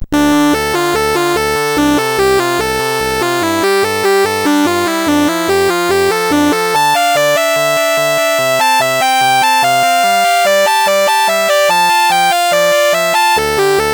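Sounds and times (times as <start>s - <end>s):
SID CSG8580R5 sound chip music: 0.0s - 13.9s.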